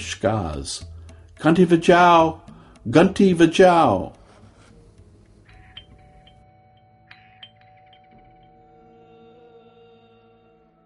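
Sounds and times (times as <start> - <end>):
speech: 0.0 - 4.2
doorbell ding-dong chime: 5.5 - 9.5.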